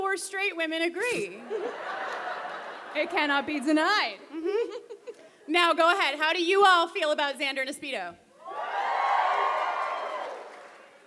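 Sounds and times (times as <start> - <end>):
speech: 0.2 - 2.2, 2.9 - 4.9, 5.5 - 8.2
laughter: 1.4 - 5.4
live audience booing: 8.4 - 10.8.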